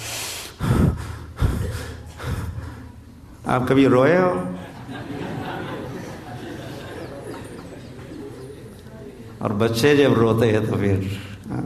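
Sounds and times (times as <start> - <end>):
long deep breaths drawn heavily: 0.0 - 3.3
speech: 3.5 - 5.2, 9.4 - 11.6
laughter: 4.3 - 9.5.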